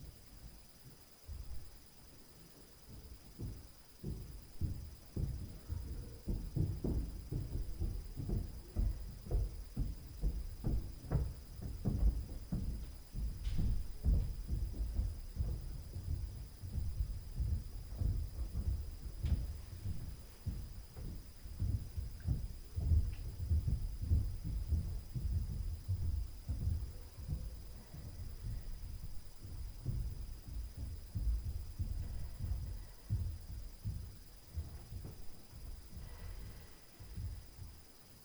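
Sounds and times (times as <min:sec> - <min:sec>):
upstairs floor noise at night: 0:00.3 - 0:38.2
footsteps on stairs at night: 0:00.8 - 0:38.2.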